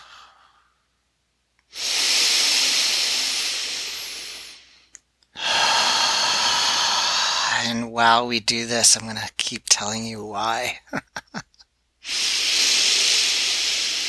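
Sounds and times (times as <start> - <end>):
forceful exhaling while pulling the belly in during a breathing exercise: 0.0 - 0.6, 1.7 - 7.6, 12.0 - 14.0
speech: 7.9 - 11.5
laughter: 10.7 - 11.6.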